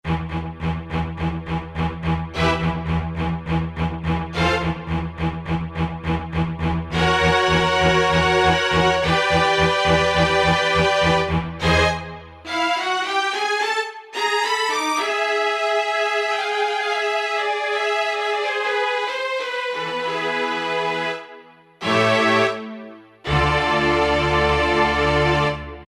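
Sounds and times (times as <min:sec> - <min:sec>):
Hall Strings preset on E-mu Proteus-1: 0:00.0 - 0:25.8.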